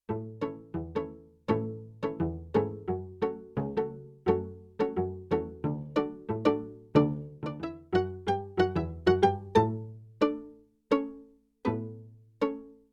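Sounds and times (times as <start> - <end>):
stereo pizzicato octaves sample on a Yamaha TX16W sampler: 0.0 - 12.9.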